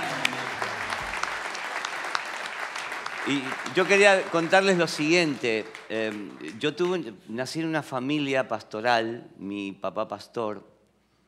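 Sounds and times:
audience applauding: 0:00.0 - 0:07.0
speech: 0:03.3 - 0:10.7.

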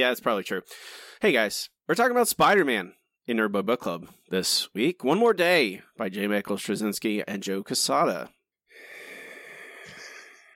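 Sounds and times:
speech: 0:00.0 - 0:08.4
heavy labored wheezy breathing: 0:08.7 - 0:10.5.

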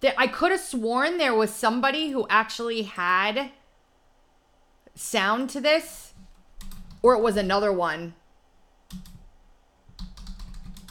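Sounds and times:
speech: 0:00.0 - 0:03.6, 0:05.0 - 0:06.0, 0:07.0 - 0:08.2, 0:08.9 - 0:09.1
faint typing on a computer keyboard: 0:06.3 - 0:07.0, 0:08.9 - 0:09.3, 0:09.9 - 0:10.8.

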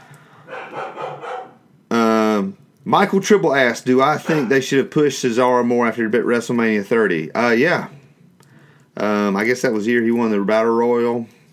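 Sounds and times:
dogs barking excitedly: 0:00.4 - 0:01.6
speech: 0:02.4 - 0:08.0, 0:09.0 - 0:11.4.

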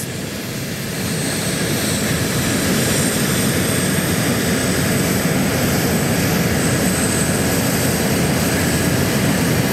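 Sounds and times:
formation of military jets roaring overhead: 0:00.0 - 0:09.7.

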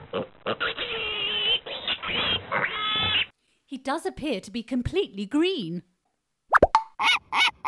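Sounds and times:
pig grunting and oinking: 0:00.0 - 0:03.3
pig squealing: 0:00.0 - 0:03.3, 0:07.0 - 0:07.6
speech: 0:03.8 - 0:05.9.

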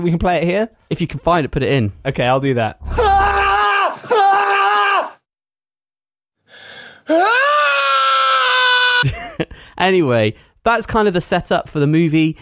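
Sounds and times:
speech: 0:00.0 - 0:03.1, 0:07.1 - 0:07.5, 0:09.8 - 0:12.3
man letting out a loud sustained scream: 0:02.8 - 0:05.2, 0:07.1 - 0:09.0
man drawing a sharp audible breath: 0:06.5 - 0:07.1.

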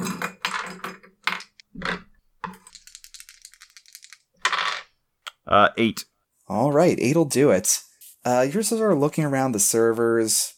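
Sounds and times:
dice rattling in a cup: 0:00.0 - 0:04.9
speech: 0:05.5 - 0:10.5.

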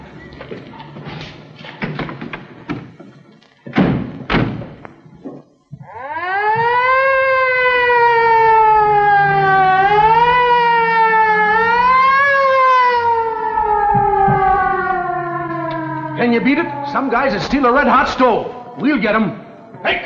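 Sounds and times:
speech: 0:00.5 - 0:00.8, 0:17.0 - 0:20.0
thuds and knocks: 0:03.7 - 0:04.8, 0:13.8 - 0:14.9
emergency vehicle siren wailing up and down: 0:05.7 - 0:20.0.

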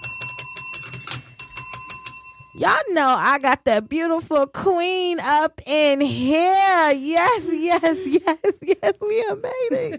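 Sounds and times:
bell being tapped: 0:00.0 - 0:02.7
speech: 0:02.6 - 0:09.9.

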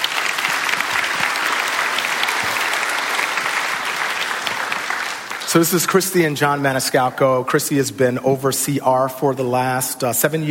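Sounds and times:
sustained applause from a sizable crowd: 0:00.0 - 0:06.6
speech: 0:05.5 - 0:10.4.

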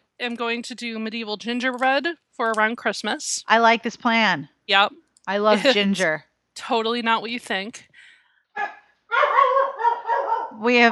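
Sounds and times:
speech: 0:00.2 - 0:07.9, 0:10.6 - 0:10.9
laughter: 0:05.5 - 0:06.0
dog barking: 0:08.6 - 0:10.6.

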